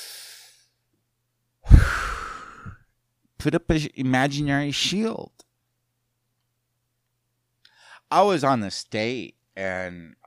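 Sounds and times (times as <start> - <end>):
deep breath in: 0.0 - 0.6, 1.7 - 2.8
speech: 3.4 - 5.4, 8.1 - 10.2.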